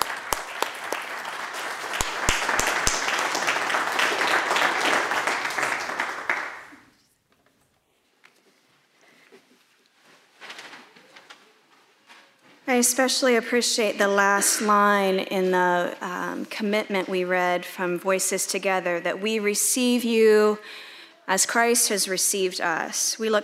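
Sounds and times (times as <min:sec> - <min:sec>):
crowd applauding: 0:00.0 - 0:06.9
speech: 0:12.8 - 0:23.4.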